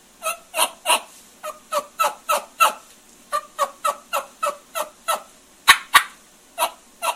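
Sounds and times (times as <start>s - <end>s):
turkey hen yelps imitated on a latex mouth diaphragm call: 0.2s - 7.1s.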